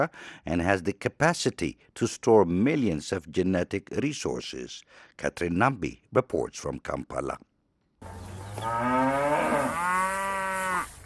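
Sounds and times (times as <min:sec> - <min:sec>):
speech: 0:00.0 - 0:09.0
Ankole long-horned cattle mooing: 0:08.5 - 0:11.0.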